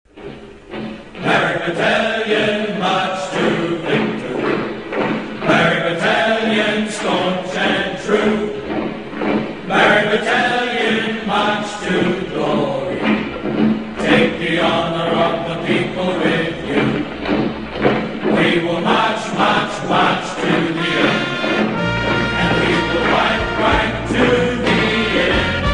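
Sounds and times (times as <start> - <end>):
marching song: 0.1 - 25.7.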